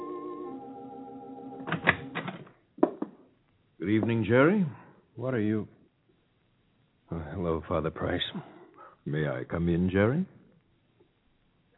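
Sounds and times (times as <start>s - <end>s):
sustained musical tone: 0.0s - 1.6s
speech: 3.8s - 5.8s, 7.4s - 10.4s.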